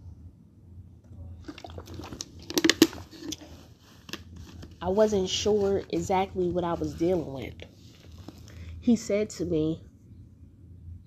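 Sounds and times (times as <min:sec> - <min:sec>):
low hum: 0:00.0 - 0:11.0
sipping and swallowing water from a glass: 0:01.4 - 0:03.5
speech: 0:04.8 - 0:07.7, 0:08.8 - 0:09.9.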